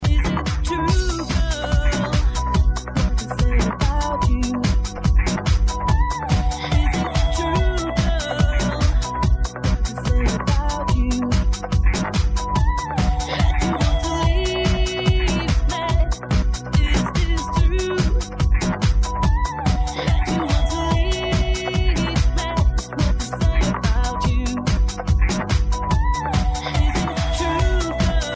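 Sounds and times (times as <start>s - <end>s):
trance music: 0.0s - 28.3s.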